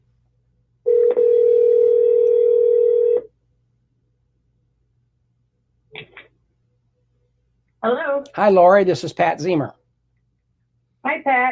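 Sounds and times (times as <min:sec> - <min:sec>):
telephone dial tone: 0:00.9 - 0:03.3
speech: 0:07.8 - 0:09.8, 0:11.0 - 0:11.5.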